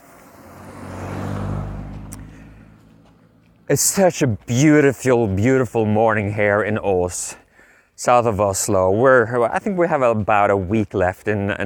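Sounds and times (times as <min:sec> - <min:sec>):
single car passing by: 0:00.0 - 0:03.8
speech: 0:03.7 - 0:07.4, 0:08.0 - 0:11.6.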